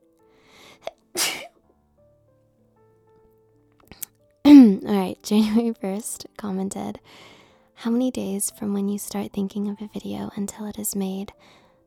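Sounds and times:
person sneezing loudly: 1.2 - 1.5
speech: 4.8 - 11.6.

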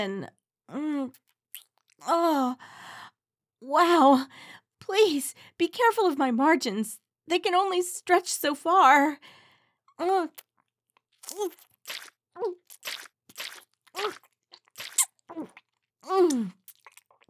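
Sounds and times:
speech: 0.0 - 1.3, 2.0 - 2.8, 3.6 - 9.4, 10.0 - 10.5, 11.3 - 14.3, 15.4 - 16.6
exaggerated chewing and gulping of a mouthful of lunch: 10.4 - 17.2.

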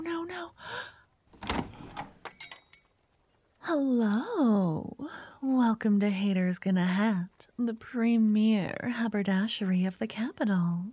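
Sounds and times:
haberdashery shop door being opened with clunks and rattles: 1.4 - 2.2
speech: 3.7 - 10.9.

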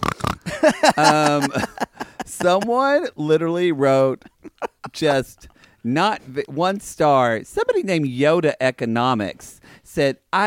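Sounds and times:
person imitating a pig oinking: 0.0 - 2.6
laughter: 0.4 - 3.1, 4.0 - 5.5
speech: 0.6 - 1.7, 2.4 - 4.3, 5.0 - 10.4.

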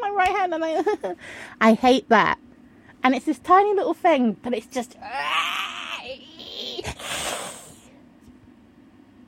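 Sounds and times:
speech: 0.2 - 2.4, 3.0 - 5.3
person imitating a vampire hiss: 6.0 - 7.9.

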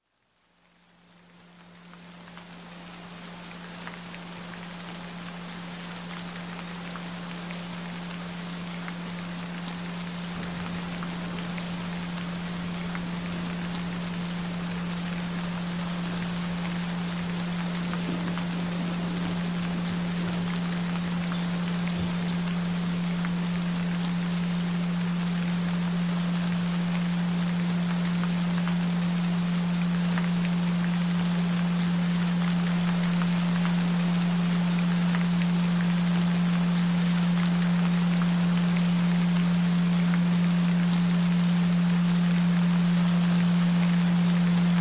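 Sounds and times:
gentle rain: 0.0 - 44.7.

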